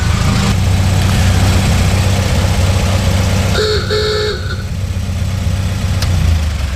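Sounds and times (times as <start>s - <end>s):
1926 Chevrolet Superior engine idling: 0.0s - 6.7s
old-fashioned car horn of a 1926 Chevrolet Superior honking: 3.4s - 4.9s.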